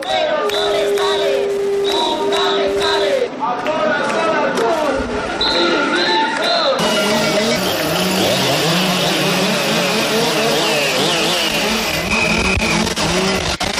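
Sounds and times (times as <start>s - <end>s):
crowd noise and voices at a protest march: 0.0s - 13.7s
several chainsaws revving at a street protest march over wildfires: 6.8s - 13.7s.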